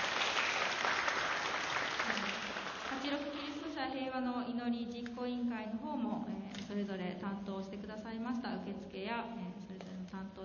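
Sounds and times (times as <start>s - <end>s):
audience applause in a reverberant church hall: 0.0s - 3.4s
speech: 3.9s - 9.5s.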